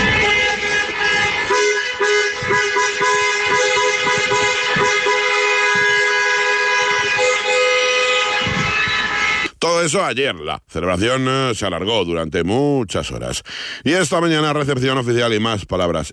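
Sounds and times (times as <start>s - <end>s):
many vehicle horns honking in a celebratory procession of cars and an open-top bus: 0.0s - 9.5s
speech: 9.8s - 16.1s.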